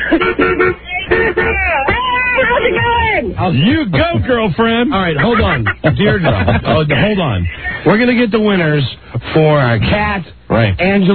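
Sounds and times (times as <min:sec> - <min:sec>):
laughter: 0:00.0 - 0:01.9, 0:04.9 - 0:07.9
car horn honks from passing cars: 0:00.0 - 0:03.2
speech: 0:00.1 - 0:00.9, 0:03.4 - 0:11.1.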